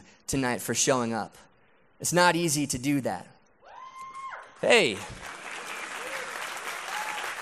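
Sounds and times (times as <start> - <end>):
speech: 0.3 - 3.4, 4.6 - 5.4
crowd cheering and applauding: 4.6 - 7.3.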